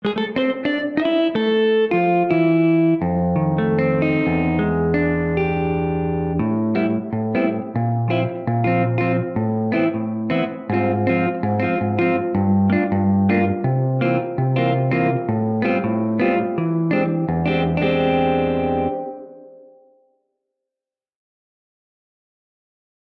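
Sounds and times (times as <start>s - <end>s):
jazz guitar with plate reverb: 0.0s - 19.9s.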